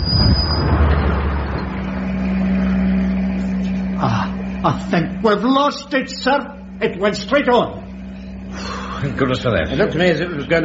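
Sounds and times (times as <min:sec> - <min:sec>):
road noise: 0:00.0 - 0:04.6
van engine rumble while driving and turning left: 0:00.0 - 0:05.4
speech: 0:04.6 - 0:07.8, 0:08.6 - 0:10.6.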